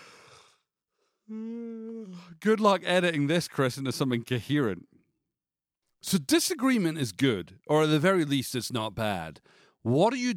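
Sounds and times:
person yawning with a voiced groan: 0:01.3 - 0:02.4
speech: 0:02.3 - 0:04.9, 0:06.0 - 0:10.3.

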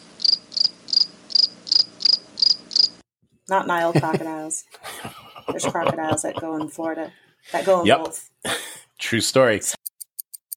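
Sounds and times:
cricket chirping sound effect: 0:00.0 - 0:03.0, 0:09.9 - 0:10.5
speech: 0:03.5 - 0:09.8
laughter: 0:03.8 - 0:07.8.

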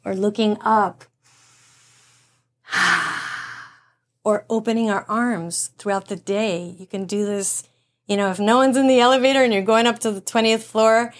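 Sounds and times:
speech: 0:00.0 - 0:01.1, 0:04.2 - 0:11.1
long deep breath drawn in through an open mouth: 0:01.2 - 0:03.8.

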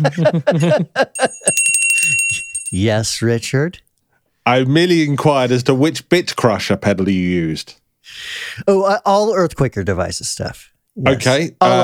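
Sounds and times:
speech: 0:00.0 - 0:03.9, 0:04.5 - 0:11.8
bell ringing: 0:01.2 - 0:02.9.

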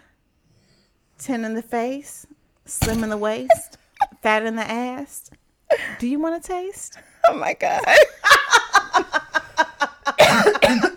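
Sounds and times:
speech: 0:01.2 - 0:08.5
person coughing: 0:02.8 - 0:04.2, 0:10.2 - 0:10.9.

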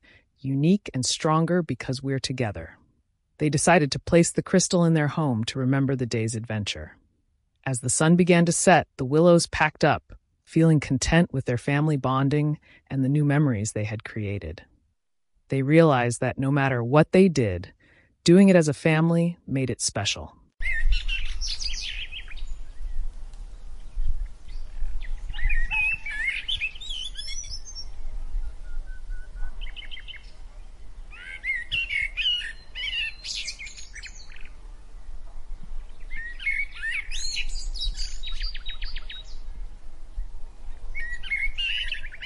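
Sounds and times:
speech: 0:00.4 - 0:02.8, 0:03.4 - 0:07.0, 0:07.6 - 0:14.7, 0:15.5 - 0:21.7
cheerful birdsong in a forest: 0:20.6 - 0:42.2.

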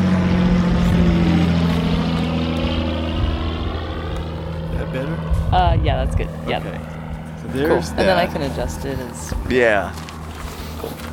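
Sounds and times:
propeller plane droning overhead: 0:00.0 - 0:11.1
speech: 0:05.5 - 0:10.1.

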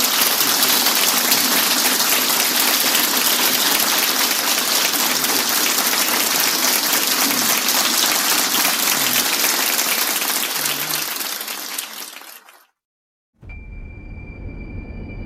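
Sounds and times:
large crowd audience applause: 0:00.0 - 0:12.8
low hum: 0:13.4 - 0:15.2.

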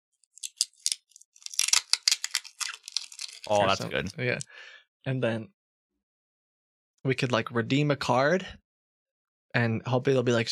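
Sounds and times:
adhesive tape being handled while piecing a cut playing card together: 0:00.2 - 0:03.5
speech: 0:03.5 - 0:05.6, 0:07.0 - 0:08.6, 0:09.5 - 0:10.4.

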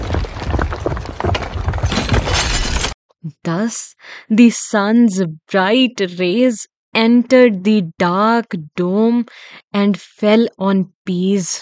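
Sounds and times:
debris crumbling and clattering: 0:00.0 - 0:03.0
large dome cracking and shattering: 0:00.0 - 0:03.0
speech: 0:03.5 - 0:11.6.

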